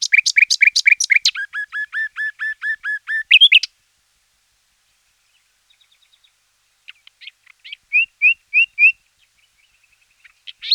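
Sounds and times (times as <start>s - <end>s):
common nightingale song: 0.0s - 3.8s, 4.9s - 10.7s.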